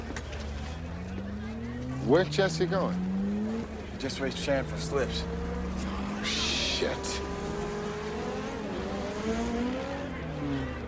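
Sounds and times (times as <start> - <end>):
street race car engines roaring as two cars accelerate: 0.0 - 10.8
speech: 2.1 - 3.1, 4.0 - 5.4, 6.2 - 7.3, 9.3 - 10.6.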